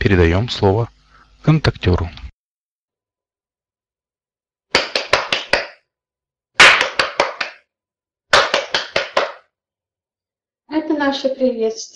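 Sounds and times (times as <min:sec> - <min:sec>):
speech: 0:00.1 - 0:02.2, 0:11.0 - 0:11.9
hand clapping as a greeting: 0:04.7 - 0:05.8, 0:06.6 - 0:07.7, 0:08.3 - 0:09.5.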